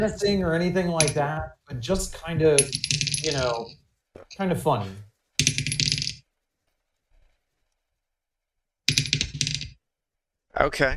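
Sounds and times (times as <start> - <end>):
speech: 0.0 - 5.8, 10.6 - 10.9
dice rattling in a glass bowl used as a dice tray: 2.6 - 3.8, 5.4 - 6.2, 8.9 - 9.8.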